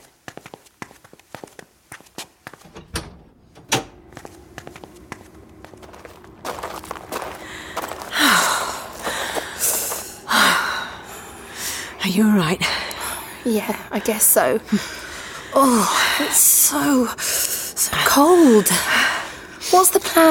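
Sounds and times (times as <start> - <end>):
footsteps shuffling across a floor: 0.0 - 2.7, 4.1 - 10.3
outdoor noise: 0.0 - 20.3
back door swinging and banging shut: 2.6 - 4.1
back door clicking and thudding open: 2.6 - 4.5
speech: 12.1 - 12.8, 13.4 - 15.0, 15.6 - 17.3, 18.1 - 19.0, 19.8 - 20.3.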